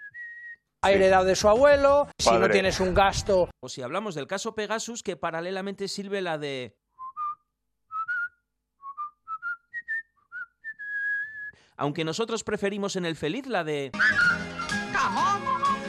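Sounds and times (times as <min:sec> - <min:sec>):
person whistling a tune: 0:00.0 - 0:00.7, 0:07.0 - 0:11.6, 0:14.0 - 0:15.8
speech: 0:00.8 - 0:06.8, 0:11.8 - 0:14.4, 0:15.0 - 0:15.6.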